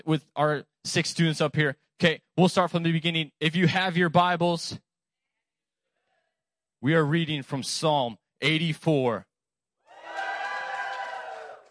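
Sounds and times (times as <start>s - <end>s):
speech: 0.0s - 4.8s, 6.8s - 9.3s
audience cheering and shouting before a morning Bible reading: 9.9s - 11.6s.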